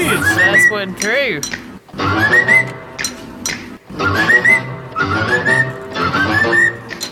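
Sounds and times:
speech: 0:00.1 - 0:02.8
bird whistling a tune: 0:02.1 - 0:02.8, 0:04.0 - 0:07.1.

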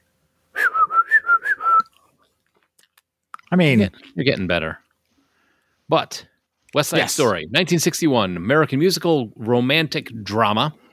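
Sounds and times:
person whistling a tune: 0:00.6 - 0:01.9
speech: 0:03.5 - 0:04.8, 0:05.9 - 0:10.8.

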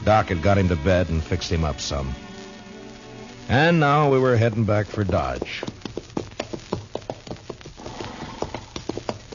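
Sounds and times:
speech: 0:00.0 - 0:02.3, 0:03.5 - 0:05.7
horse hooves clip-clopping on dusty ground in Kansas: 0:03.8 - 0:09.3.

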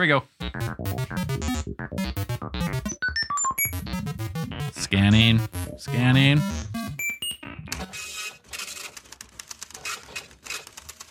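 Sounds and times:
speech: 0:00.0 - 0:02.2
high electronic beeps: 0:00.4 - 0:07.6
loud printer printing with clatter and whir: 0:07.8 - 0:09.0.

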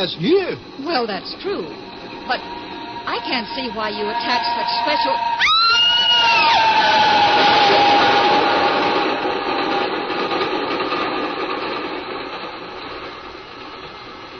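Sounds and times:
speech: 0:00.0 - 0:05.5
train wheels and engine rumbling past: 0:00.0 - 0:14.3
thin high squeal sliding downward: 0:01.4 - 0:09.9.

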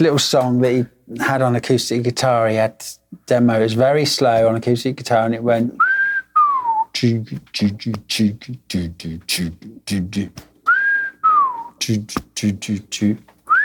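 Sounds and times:
speech: 0:00.0 - 0:05.9, 0:07.0 - 0:10.5, 0:11.8 - 0:13.3
whistled wolf-whistle style melody: 0:05.8 - 0:06.9, 0:10.7 - 0:11.8, 0:13.5 - 0:13.6.

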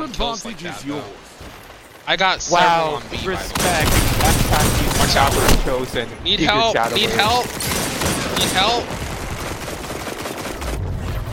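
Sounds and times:
speech: 0:00.2 - 0:07.7, 0:08.4 - 0:09.0
video game hand cannon gunfire: 0:02.6 - 0:11.3.

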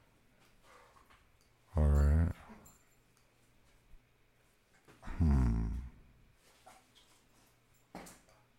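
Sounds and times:
dogs growling excitedly: 0:01.8 - 0:02.5, 0:05.0 - 0:06.1.

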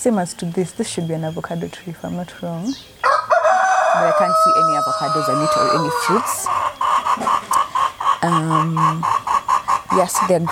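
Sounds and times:
speech: 0:00.0 - 0:03.2, 0:04.0 - 0:07.3, 0:08.2 - 0:09.2, 0:09.9 - 0:10.5
chicken clucking in a garden with avocado trees and sukuma: 0:03.1 - 0:10.5.

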